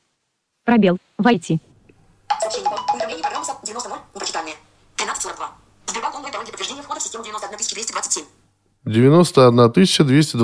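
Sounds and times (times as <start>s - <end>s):
speech: 0.7s - 1.7s, 6.2s - 10.4s
phone notification ringtone for an incoming password message: 2.3s - 3.9s.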